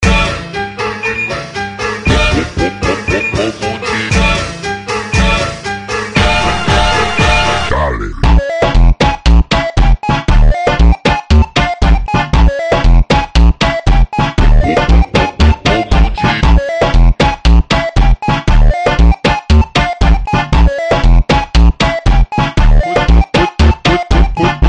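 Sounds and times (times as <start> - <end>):
beeper funk music: 0.0 - 24.6.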